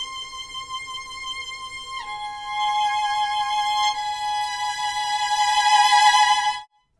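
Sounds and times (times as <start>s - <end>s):
violins: 0.0s - 6.7s.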